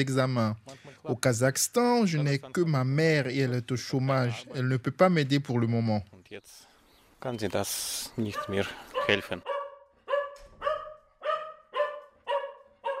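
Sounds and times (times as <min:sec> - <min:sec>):
speech: 0:00.0 - 0:09.6
dog barking: 0:08.3 - 0:12.9.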